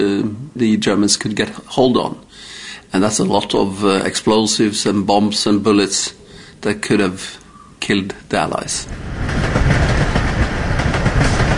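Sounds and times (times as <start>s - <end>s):
speech: 0.0s - 10.0s
electric freight train carrying sulphur rolling on rails: 8.5s - 11.5s.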